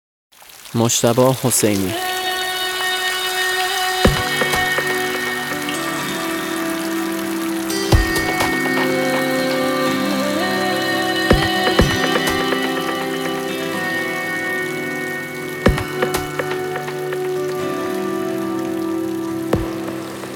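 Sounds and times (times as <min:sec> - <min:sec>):
steady rain pattering: 0:00.3 - 0:20.3
speech: 0:00.7 - 0:02.2
sustained mellow musical tones: 0:03.8 - 0:20.3
sharper splashes or knocks: 0:04.1 - 0:05.9, 0:07.7 - 0:09.7, 0:11.2 - 0:14.0, 0:15.7 - 0:17.7, 0:19.6 - 0:20.3.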